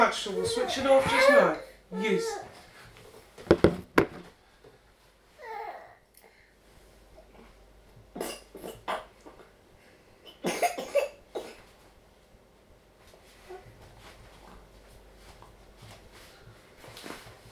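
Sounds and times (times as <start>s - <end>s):
speech: 0.1s - 2.6s
baby babbling: 0.2s - 2.5s
baby coughing: 8.2s - 9.2s, 10.3s - 11.6s.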